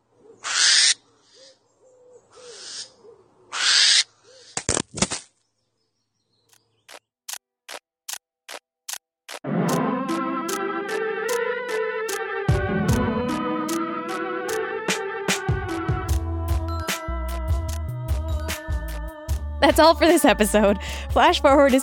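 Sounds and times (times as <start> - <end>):
angry barn owls screeching at a hidden camera: 0.4 - 1.6, 2.4 - 2.9, 3.5 - 4.6
sharp knocks and clicks: 6.5 - 9.4
music: 9.5 - 21.8
speech: 19.7 - 21.8.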